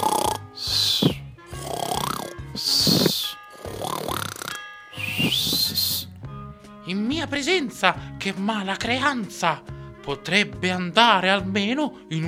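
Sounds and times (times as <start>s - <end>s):
man snoring and whistling asleep in bed: 0.0s - 6.1s
speech: 6.9s - 12.2s.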